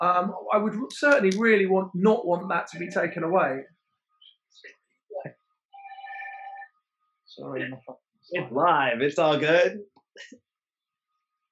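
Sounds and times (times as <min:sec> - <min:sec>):
speech: 0:00.0 - 0:03.8, 0:07.4 - 0:10.4
telephone ringing with a warbling electronic trill: 0:05.8 - 0:06.7.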